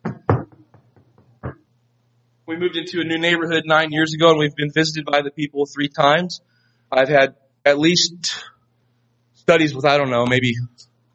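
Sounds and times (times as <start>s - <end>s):
knocking on a door: 0.0s - 1.6s
speech: 2.5s - 8.5s, 9.5s - 10.9s.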